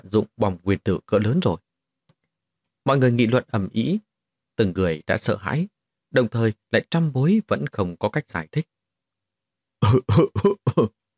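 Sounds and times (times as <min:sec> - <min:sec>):
speech: 0:00.0 - 0:01.7, 0:02.8 - 0:08.8, 0:09.8 - 0:11.0
man coughing lightly: 0:09.8 - 0:10.9.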